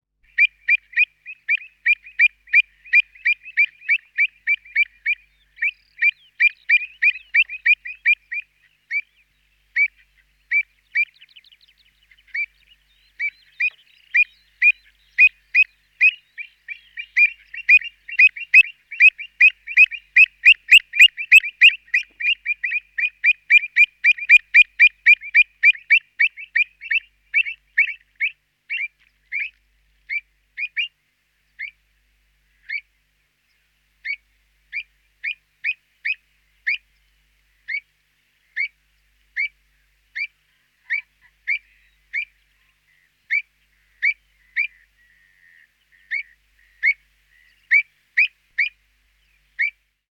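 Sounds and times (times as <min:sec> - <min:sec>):
Avocet Recurvirostra avosetta calling: 0:00.3 - 0:09.1, 0:13.2 - 0:31.0, 0:31.6 - 0:31.8, 0:32.6 - 0:32.9, 0:34.0 - 0:36.9, 0:37.7 - 0:37.9, 0:38.6 - 0:38.8, 0:39.4 - 0:48.8, 0:49.6 - 0:49.8.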